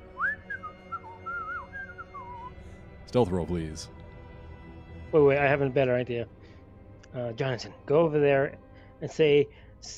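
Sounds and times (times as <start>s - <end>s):
security guard whistling a wandering tune: 0.0s - 2.6s
speech: 3.1s - 4.0s, 5.1s - 6.4s, 7.1s - 9.9s.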